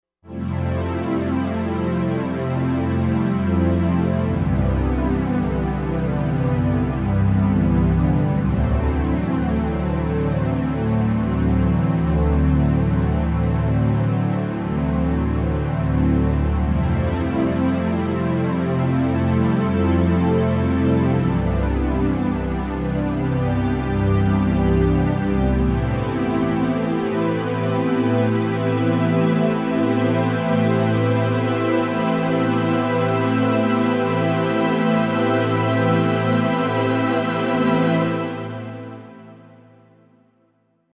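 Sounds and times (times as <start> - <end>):
analog synth strings: 0.6 - 39.5.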